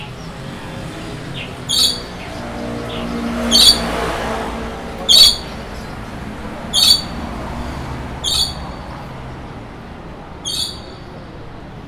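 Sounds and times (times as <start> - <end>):
steady low city hum: 0.0 - 11.8
bird calls at an urban bird market: 1.4 - 4.1, 5.0 - 5.8, 6.7 - 7.3, 8.2 - 8.9, 10.4 - 11.1.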